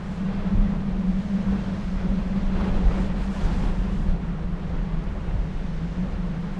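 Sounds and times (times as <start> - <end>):
wind tunnel airflow: 0.0 - 6.5.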